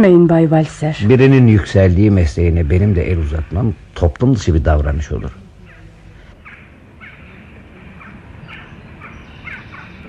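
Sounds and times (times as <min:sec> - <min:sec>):
speech: 0:00.0 - 0:05.4
crows cawing and fighting: 0:06.4 - 0:10.0.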